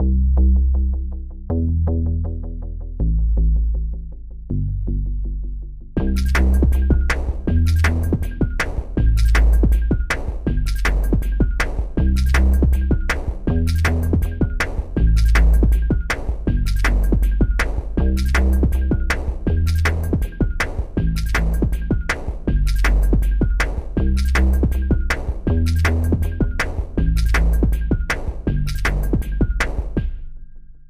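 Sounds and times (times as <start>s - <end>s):
bass: 0.0s - 30.8s
drums: 6.0s - 30.4s.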